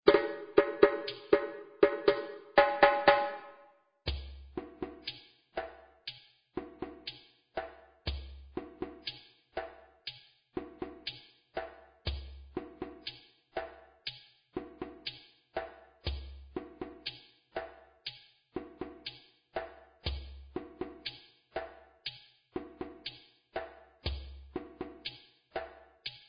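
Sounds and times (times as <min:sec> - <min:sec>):
djembe drumming: 0:00.1 - 0:03.5, 0:04.1 - 0:05.8, 0:06.6 - 0:09.8, 0:10.6 - 0:13.8, 0:15.6 - 0:17.8, 0:18.6 - 0:21.8, 0:22.6 - 0:25.8.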